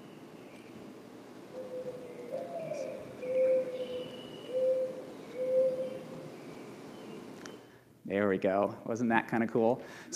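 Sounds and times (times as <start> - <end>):
dove cooing in a low grumbling call: 1.5 - 6.4
faint higher bird chirps: 1.6 - 7.8
speech: 8.1 - 10.1.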